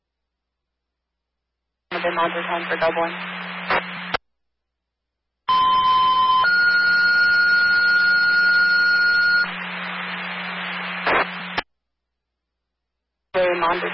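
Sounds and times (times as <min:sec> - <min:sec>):
harsh buzzing static hiss: 0:01.9 - 0:04.2, 0:06.5 - 0:11.6
speech: 0:02.0 - 0:03.9
fire alarm tone during a test: 0:05.5 - 0:09.5.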